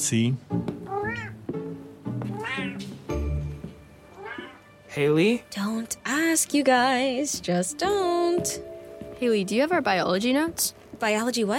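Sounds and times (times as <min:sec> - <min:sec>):
speech: 0:00.0 - 0:01.4, 0:05.0 - 0:11.5
cat meowing: 0:00.9 - 0:01.4, 0:02.3 - 0:02.9, 0:04.1 - 0:04.7.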